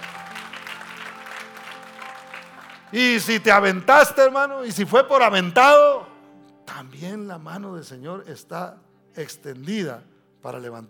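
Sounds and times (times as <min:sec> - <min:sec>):
audience applauding: 0:00.0 - 0:03.8
speech: 0:02.9 - 0:06.1, 0:07.0 - 0:10.8.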